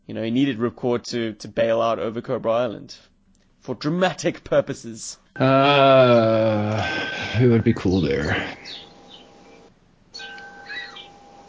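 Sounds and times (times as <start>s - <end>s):
speech: 0.1s - 8.9s
wind chimes ringing outside: 5.4s - 9.1s, 10.2s - 11.1s
birds chirping: 5.4s - 11.4s.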